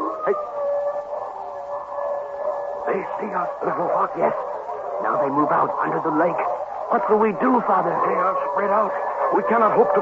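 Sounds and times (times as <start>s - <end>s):
wolf howling in heavy frozen snow: 0.0s - 9.9s
speech: 3.2s - 9.9s.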